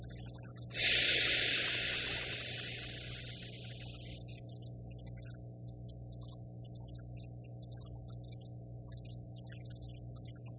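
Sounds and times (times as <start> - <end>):
slow deep airy inhale: 0.8 - 3.9.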